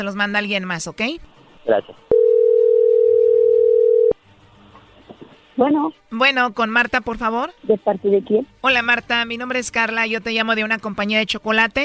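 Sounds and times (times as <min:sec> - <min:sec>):
speech: 0:00.0 - 0:02.1, 0:05.6 - 0:11.8
telephone ringing tone while placing a call: 0:02.1 - 0:04.2.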